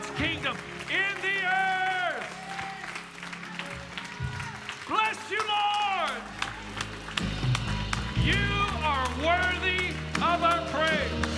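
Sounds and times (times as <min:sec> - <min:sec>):
crowd applauding in a large room: 0:00.0 - 0:11.3
speech: 0:00.2 - 0:01.3.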